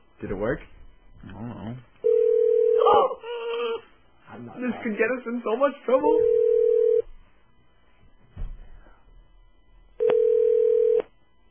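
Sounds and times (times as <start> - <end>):
speech: 0.2 - 2.0, 4.3 - 6.4
telephone ringback tone while a call waits to be answered: 2.0 - 3.1, 6.2 - 7.0, 10.0 - 11.1.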